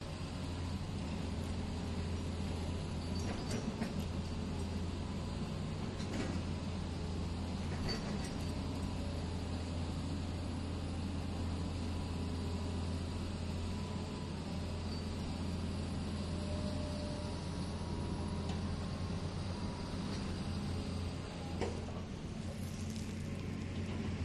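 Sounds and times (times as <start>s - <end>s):
excavators idling and driving at construction site: 0.0s - 24.2s.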